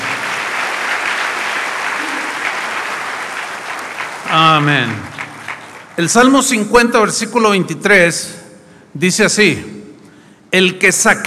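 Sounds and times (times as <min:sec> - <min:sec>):
audience applauding: 0:00.0 - 0:06.6
speech: 0:04.3 - 0:05.1, 0:06.0 - 0:09.8, 0:10.5 - 0:11.2.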